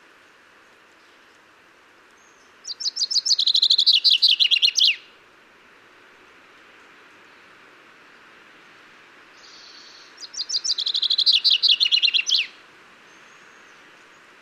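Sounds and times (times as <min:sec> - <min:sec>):
common chaffinch Fringilla coelebs singing: 0:02.2 - 0:05.2, 0:09.4 - 0:14.4.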